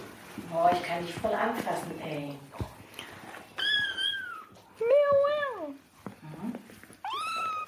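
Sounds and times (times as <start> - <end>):
speech: 0.7 - 2.7
cats yowling in a fight: 3.6 - 4.6, 7.0 - 7.6.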